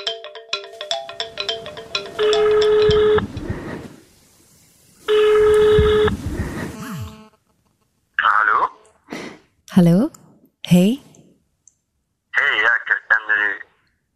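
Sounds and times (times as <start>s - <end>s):
faint noise: 0.0s - 14.1s
ringback tone of an outgoing phone call: 0.6s - 3.4s, 5.1s - 6.2s
speech: 9.8s - 10.1s.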